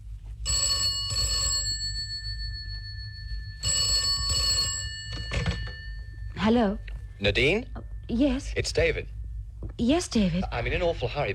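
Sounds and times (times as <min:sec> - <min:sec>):
low steady rumble: 0:00.0 - 0:11.3
telephone bell ringing in a double-burst pattern: 0:00.4 - 0:07.2
speech: 0:06.5 - 0:09.2, 0:09.8 - 0:11.3.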